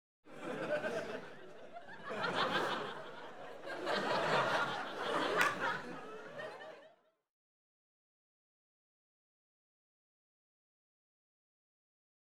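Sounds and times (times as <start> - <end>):
light entertainment audience laughing: 0.3 - 7.0.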